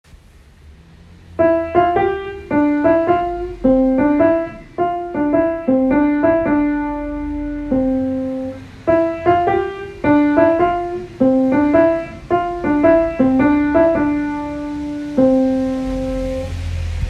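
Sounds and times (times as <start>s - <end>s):
chorus with piano: 1.4s - 17.0s.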